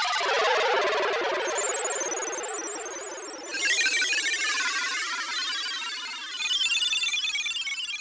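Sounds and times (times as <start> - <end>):
deep Roland U-220 synthesizer factory timbre: 0.1 - 7.9.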